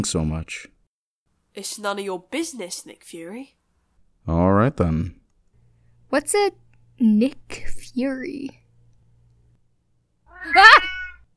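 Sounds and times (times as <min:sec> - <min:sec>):
speech: 0:00.0 - 0:00.8, 0:01.6 - 0:03.6, 0:04.2 - 0:05.2, 0:06.1 - 0:08.6, 0:10.4 - 0:10.9
cat crying: 0:10.3 - 0:11.3.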